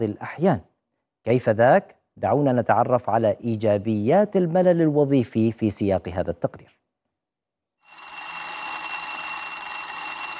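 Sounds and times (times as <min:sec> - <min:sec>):
speech: 0:00.0 - 0:06.8
alarm clock ringing with a metallic jangle: 0:07.8 - 0:10.3.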